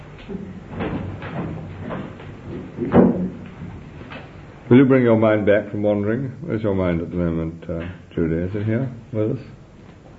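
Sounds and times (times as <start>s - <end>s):
speech: 0.3s - 1.1s, 4.7s - 9.6s
door being opened: 0.3s - 4.4s.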